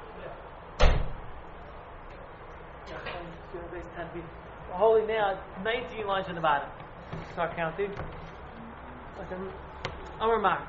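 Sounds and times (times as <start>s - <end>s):
faint low noise: 0.0s - 10.6s
door shutting: 0.8s - 1.2s
speech: 3.8s - 6.8s, 7.4s - 8.2s, 9.2s - 10.6s.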